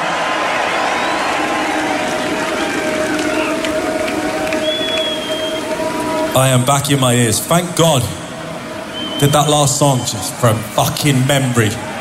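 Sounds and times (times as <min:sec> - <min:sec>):
festival crowd cheering and roaring at a metal concert: 0:00.0 - 0:11.9
speech: 0:06.4 - 0:08.2, 0:09.2 - 0:11.9.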